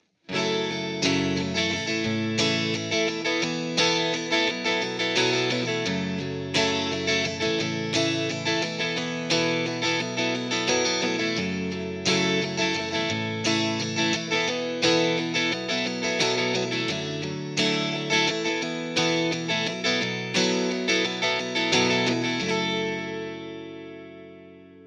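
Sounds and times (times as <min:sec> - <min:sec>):
Stratocaster electric guitar through a hot JCM800 amplifier: 0:00.3 - 0:24.8.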